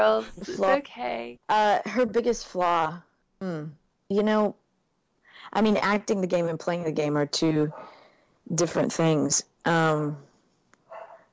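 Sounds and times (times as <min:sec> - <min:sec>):
speech: 0:00.0 - 0:04.6, 0:05.4 - 0:07.9, 0:08.5 - 0:10.3
female foster dog barking: 0:07.7 - 0:08.0, 0:10.9 - 0:11.3.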